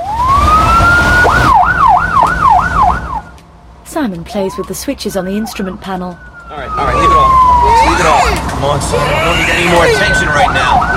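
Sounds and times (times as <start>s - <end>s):
ambulance siren of an ambulance speeding along a freeway: 0.0s - 3.3s, 4.2s - 10.9s
speech: 4.0s - 10.9s.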